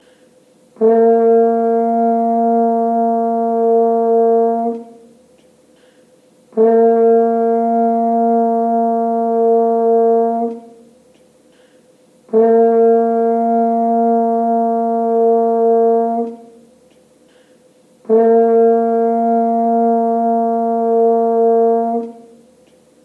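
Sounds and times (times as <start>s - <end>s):
French horn playing F: 0.8s - 5.2s, 6.5s - 11.0s, 12.3s - 16.8s, 18.0s - 22.6s.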